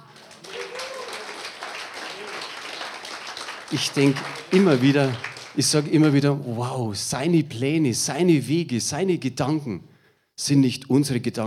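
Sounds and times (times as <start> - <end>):
church audience applauding during a sermon: 0.0 - 6.2
speech: 3.7 - 11.4.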